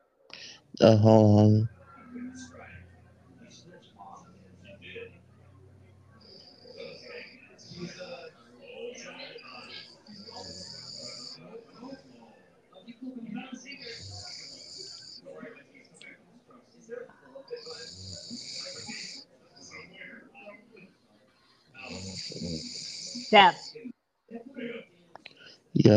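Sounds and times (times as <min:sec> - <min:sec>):
people talking quietly: 0:00.0 - 0:25.9
speech: 0:00.8 - 0:01.8, 0:23.3 - 0:23.6
raspy snore-like noise: 0:06.1 - 0:08.2, 0:09.3 - 0:12.0, 0:13.7 - 0:15.3, 0:17.5 - 0:19.9, 0:21.8 - 0:23.8.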